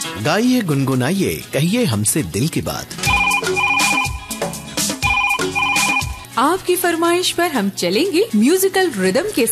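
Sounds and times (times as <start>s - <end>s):
speech: 0.2s - 3.0s, 6.4s - 9.5s
telephone ringing in an electronic pattern: 3.0s - 6.2s.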